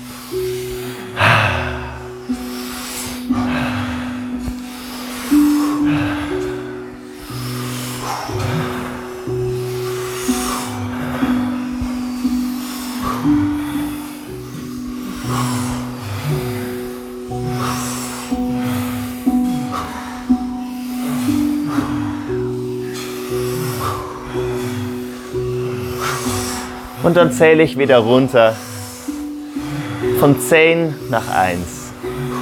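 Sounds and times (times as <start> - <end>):
rapid forceful breathing during a guided breathing exercise: 0.0 - 32.4
steady sustained musical drone: 0.0 - 32.4
speech: 27.1 - 28.7, 30.2 - 31.8.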